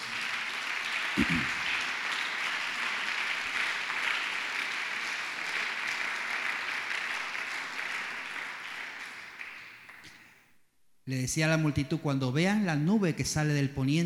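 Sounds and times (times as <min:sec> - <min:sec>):
audience applauding: 0:00.0 - 0:10.2
speech: 0:01.2 - 0:01.6, 0:11.1 - 0:14.0.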